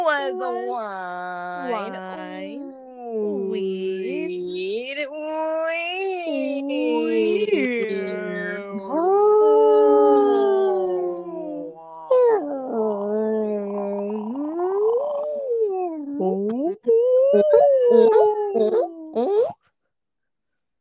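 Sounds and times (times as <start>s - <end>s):
speech: 0.0s - 4.1s
people imitating whale calls with wavering moans: 0.0s - 19.6s.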